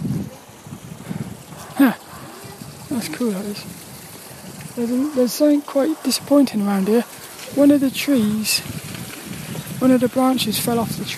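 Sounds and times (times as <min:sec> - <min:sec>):
breezy outdoor noise: 0:00.0 - 0:11.1
dogs splashing about in water: 0:01.0 - 0:09.9
speech: 0:01.8 - 0:02.0, 0:03.0 - 0:03.8, 0:04.8 - 0:08.8, 0:09.8 - 0:11.1.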